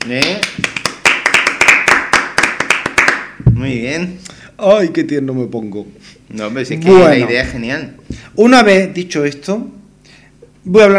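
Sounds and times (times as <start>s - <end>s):
speech: 0.0s - 0.5s, 3.6s - 9.8s, 10.6s - 10.9s
hands clapping in applause: 0.0s - 3.4s.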